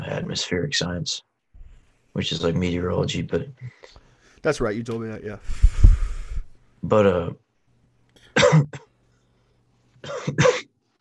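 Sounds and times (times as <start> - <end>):
speech: 0.1 - 1.3, 2.2 - 5.9, 6.8 - 7.4, 8.4 - 8.8, 10.0 - 10.6
person coughing: 8.3 - 8.9, 10.0 - 10.8.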